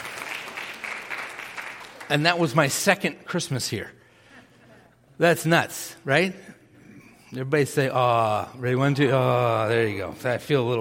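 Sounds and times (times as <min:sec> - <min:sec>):
congregation applauding: 0:00.0 - 0:02.6
speech: 0:02.1 - 0:04.0, 0:05.2 - 0:06.6, 0:07.3 - 0:10.7.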